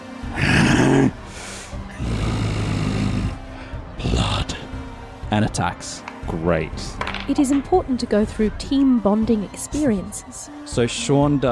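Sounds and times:
person voicing a rough throaty monster growl: 0:00.3 - 0:01.2, 0:01.9 - 0:03.4
speech: 0:05.3 - 0:11.5.

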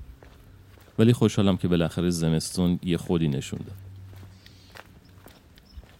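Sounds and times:
footsteps of a person walking on a hard surface on a cold winter morning: 0:00.0 - 0:01.4, 0:03.0 - 0:05.9
speech: 0:01.0 - 0:03.9.

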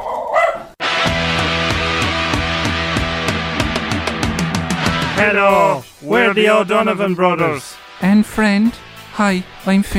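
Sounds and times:
dog barking: 0:00.0 - 0:00.8
loud steady rhythmic music: 0:00.8 - 0:09.9
speech: 0:05.2 - 0:09.9.

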